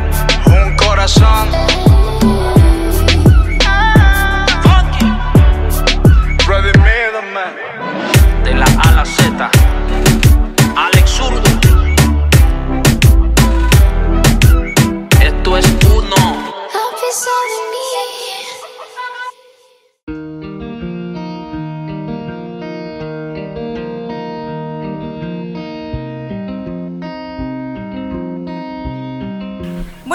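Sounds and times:
song with pounding beat, percussive hits and layered melodic instruments: 0.0s - 7.0s, 8.0s - 16.5s.

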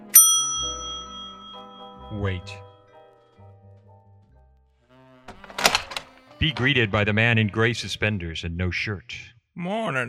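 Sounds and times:
door bell ringing: 0.0s - 2.8s
speech: 2.1s - 2.7s, 6.4s - 10.0s.

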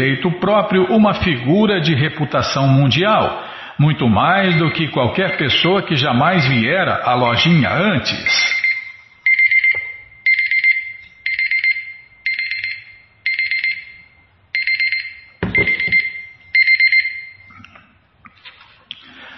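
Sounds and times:
speech: 0.0s - 8.6s
timer alarm beeping: 4.4s - 17.6s.

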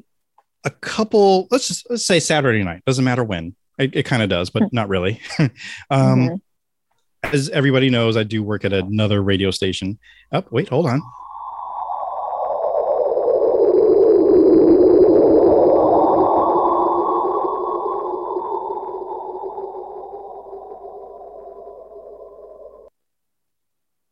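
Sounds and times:
speech: 0.9s - 6.5s, 7.2s - 11.2s
laughter: 5.1s - 5.7s
faint high whine: 7.4s - 22.9s
sonified black hole echo of low sliding sine-like tones: 10.4s - 22.9s.

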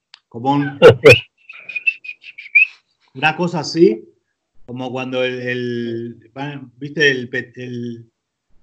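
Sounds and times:
speech: 0.3s - 1.8s, 3.2s - 4.1s, 4.7s - 8.1s
laughter: 0.6s - 1.2s
football player whistling short high notes during a training session: 0.7s - 2.8s.

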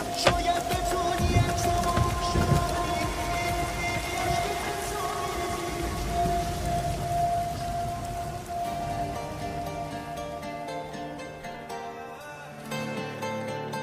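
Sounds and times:
steady rain pattering on surfaces: 0.0s - 11.9s
faint sustained tone: 4.2s - 13.7s.

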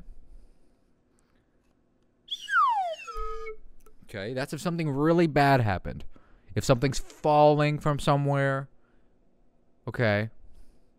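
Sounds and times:
slide whistle swooping downward in pitch: 2.3s - 3.7s
speech: 4.1s - 8.7s, 9.8s - 10.4s.

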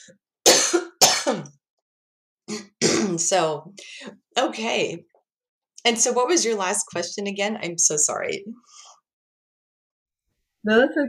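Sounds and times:
speech: 0.0s - 1.6s, 2.5s - 5.1s, 5.8s - 8.9s, 10.6s - 11.0s
harsh raspy coughing and throat clearing: 0.4s - 1.6s, 2.5s - 3.4s.

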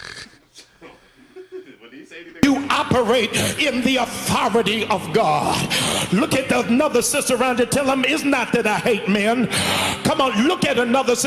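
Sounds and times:
grunting vocal sounds of a preacher: 0.0s - 11.2s
heavy wheezing breathing of a preacher straining mid-sermon: 0.0s - 11.2s
laughter: 0.4s - 11.2s
speech: 2.1s - 11.2s.

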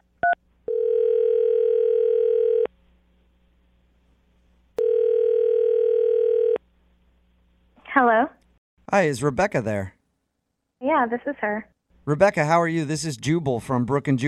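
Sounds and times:
long steady electronic telephone ringing tones: 0.2s - 2.7s, 4.8s - 6.6s
speech: 9.0s - 10.0s, 10.9s - 14.2s.

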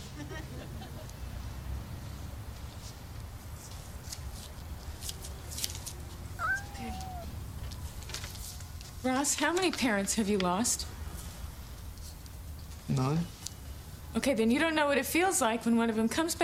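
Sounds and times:
cat meowing: 6.4s - 7.4s
murmuring noise: 6.4s - 7.4s
speech: 9.0s - 10.9s, 13.0s - 13.4s, 14.2s - 16.4s.

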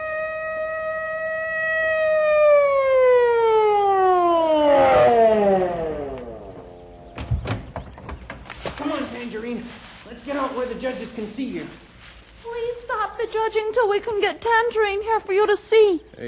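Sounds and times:
police car siren wailing: 0.0s - 7.2s
sharp clunks: 6.5s - 8.8s
speech: 10.8s - 12.2s, 13.3s - 16.2s.

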